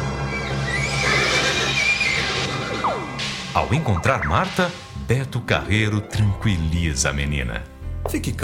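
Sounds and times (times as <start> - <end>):
horse whinnying loudly: 0.1 - 3.2
speech: 3.7 - 8.4.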